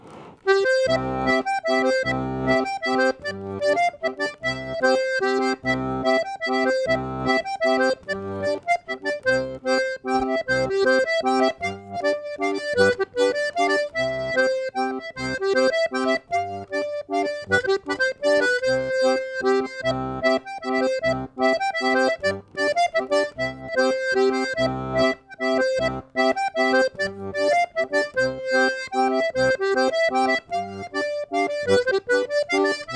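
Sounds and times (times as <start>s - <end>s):
mazurka music: 0.4s - 32.9s.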